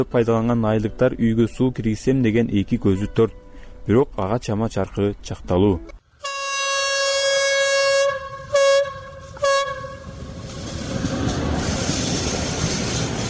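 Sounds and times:
speech: 0:00.0 - 0:06.0
train horn: 0:06.2 - 0:10.3
train passing near a village: 0:07.7 - 0:13.2.

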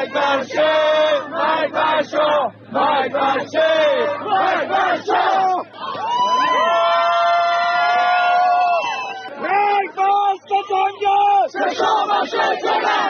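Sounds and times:
crowd of political supporters chanting slogans at a rally: 0:00.0 - 0:06.0, 0:09.3 - 0:13.0
massed voices of supporters in a long sustained shout: 0:00.0 - 0:13.0.

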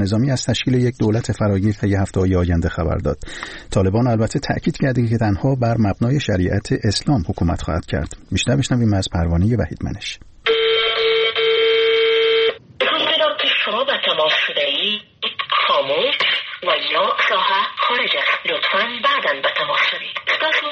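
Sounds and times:
speech: 0:00.0 - 0:10.6, 0:16.8 - 0:20.7
short steady phone tone: 0:10.4 - 0:12.6
woman's recorded automated announcement over a telephone line: 0:12.8 - 0:20.7.

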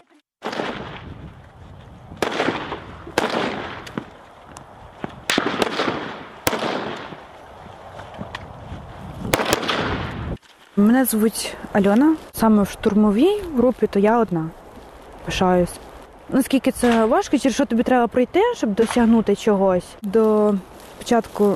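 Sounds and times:
assault rifle gunshots echoing at an outdoor firing range: 0:00.4 - 0:01.2, 0:02.2 - 0:04.1, 0:05.2 - 0:07.2, 0:09.3 - 0:10.3
speech: 0:10.8 - 0:14.6, 0:15.2 - 0:21.5.

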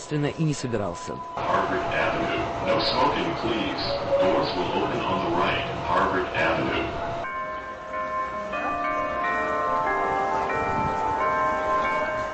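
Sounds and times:
indistinct voices: 0:00.0 - 0:07.3
busy street noise: 0:00.0 - 0:12.3
speech: 0:00.1 - 0:07.0
church bells ringing: 0:00.3 - 0:12.3.

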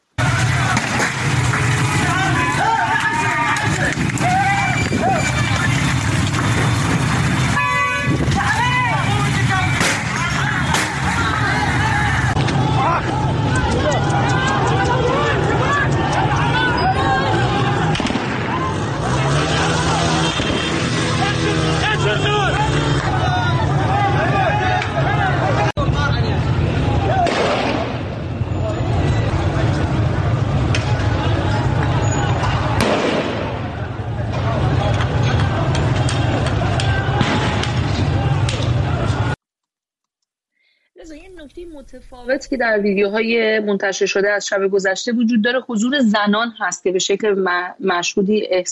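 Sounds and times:
street crowd babble: 0:00.1 - 0:39.4, 0:41.0 - 0:46.5
street crowd shouting: 0:00.2 - 0:06.1, 0:07.4 - 0:39.4
passing vehicle rumble: 0:00.2 - 0:39.4
gunshots fired at protesters: 0:09.7 - 0:11.3, 0:17.9 - 0:21.0, 0:27.2 - 0:28.2, 0:32.8 - 0:33.9, 0:37.1 - 0:38.8
speech: 0:42.4 - 0:48.6.

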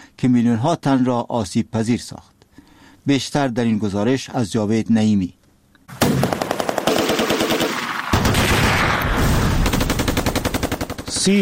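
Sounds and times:
speech: 0:00.2 - 0:02.4, 0:03.0 - 0:06.2
bursts of automatic weapons fire: 0:05.9 - 0:11.3.

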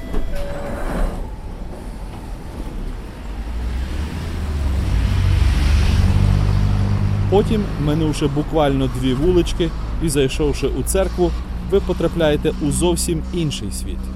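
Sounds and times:
high squeal of London Underground metro train: 0:00.0 - 0:01.4
London Underground metro train rumbling: 0:00.0 - 0:09.4
speech: 0:07.3 - 0:14.1.

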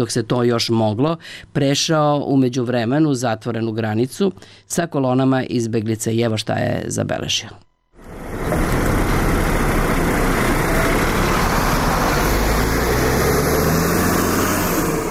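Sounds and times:
speech: 0:00.0 - 0:07.7
bus carrying refugees idling at the Serbia-Croatia border: 0:08.0 - 0:15.0.

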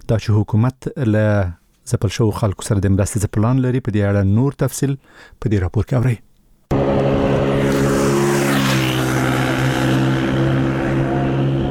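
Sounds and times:
speech: 0:00.1 - 0:06.3
motorcycle riding very fast: 0:06.7 - 0:11.6.

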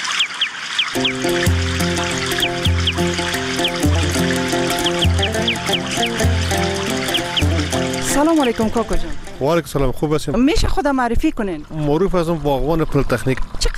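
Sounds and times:
many birds chirping and calling: 0:00.0 - 0:10.0
speech: 0:01.0 - 0:01.7, 0:08.2 - 0:13.7
steady layered tonal drone: 0:01.0 - 0:09.8
rhythmic low thumps: 0:01.0 - 0:10.5.

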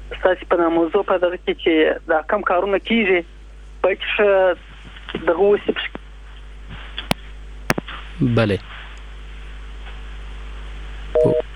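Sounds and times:
constant low hum and hiss: 0:00.0 - 0:11.5
speech: 0:00.2 - 0:05.9, 0:08.2 - 0:08.7
phone busy tone beep after call disconnecting: 0:11.2 - 0:11.4.

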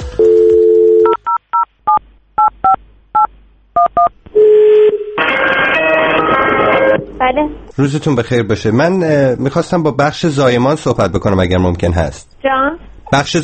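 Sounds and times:
telephone ringing tone: 0:00.1 - 0:01.4, 0:03.9 - 0:07.0
telephone keypad beeps dialing a hospital: 0:00.2 - 0:04.1
loud noisy sound: 0:05.2 - 0:07.7
speech: 0:07.3 - 0:13.4.

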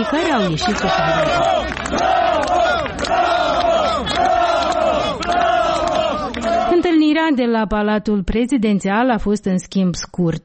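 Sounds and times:
speech: 0:00.0 - 0:04.4, 0:07.1 - 0:10.4
large crowd booing and jeering outdoors in the street: 0:00.0 - 0:06.9.

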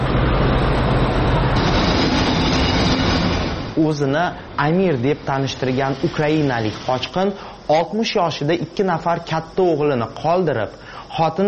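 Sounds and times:
rail rumble of an arriving train: 0:00.0 - 0:07.7
train arriving at a railway station: 0:00.0 - 0:11.4
speech: 0:03.8 - 0:11.4.

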